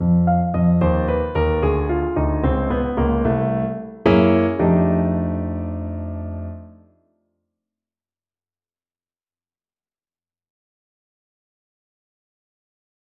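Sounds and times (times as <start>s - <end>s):
blues ending phrases: 0.2s - 6.7s.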